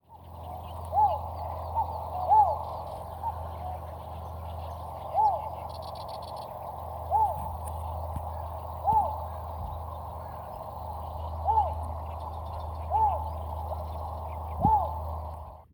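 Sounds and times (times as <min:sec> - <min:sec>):
yellow bittern calling at Hyoko pond in Agano Niigata: 0:00.0 - 0:15.7.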